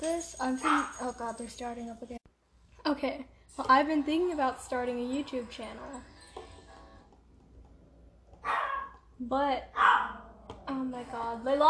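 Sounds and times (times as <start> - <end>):
speech: 0.0 - 6.1, 9.2 - 11.6
female dog bark-growling: 8.4 - 9.0, 9.7 - 10.5.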